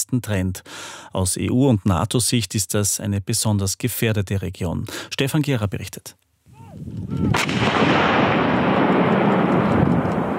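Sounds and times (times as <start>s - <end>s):
speech: 0.1s - 6.2s, 6.8s - 8.2s
artillery cannon firing live ammunition across open ground: 7.3s - 10.3s.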